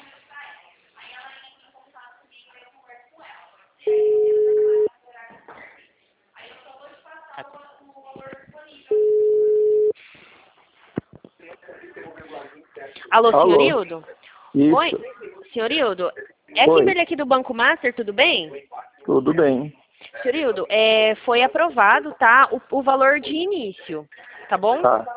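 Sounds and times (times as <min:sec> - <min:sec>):
telephone ringback tones as a call rings out: 0:03.9 - 0:04.9, 0:08.9 - 0:09.9
speech: 0:13.1 - 0:25.1.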